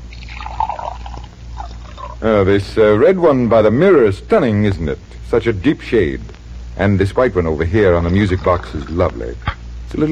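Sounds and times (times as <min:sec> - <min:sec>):
water poured into flower vases: 0:00.1 - 0:02.2, 0:08.0 - 0:09.1
speech: 0:02.2 - 0:10.1.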